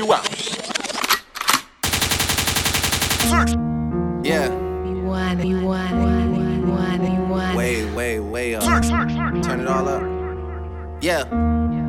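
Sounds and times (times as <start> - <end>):
speech: 0.0 - 0.6, 3.2 - 10.2, 11.0 - 11.8
loud sharp gunshot blasts: 1.8 - 3.6
rapid rattling burst of automatic fire: 1.8 - 3.6.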